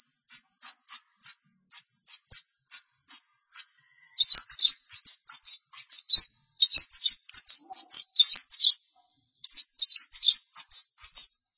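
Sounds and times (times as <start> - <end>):
long-tailed shrike song: 0.0 - 11.5.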